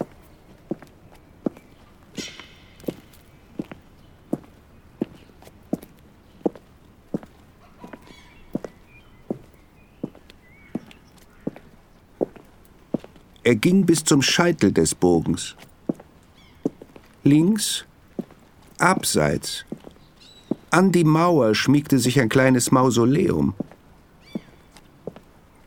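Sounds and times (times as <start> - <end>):
footsteps walking along a path: 0.0 - 13.4, 14.2 - 17.2, 18.0 - 20.7, 23.6 - 25.6
birds: 0.0 - 25.6
speech: 13.5 - 15.7, 17.2 - 17.9, 18.8 - 19.7, 20.7 - 23.6.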